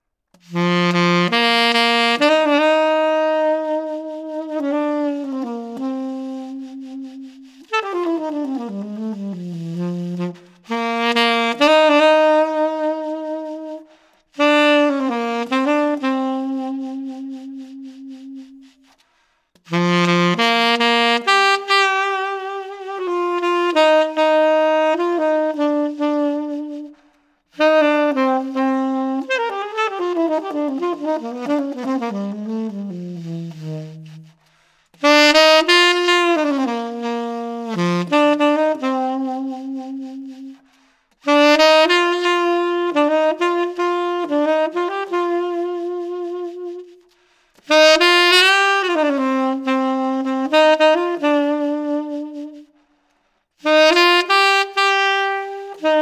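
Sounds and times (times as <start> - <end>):
tenor saxophone playing in the altissimo register: 0.0 - 56.0.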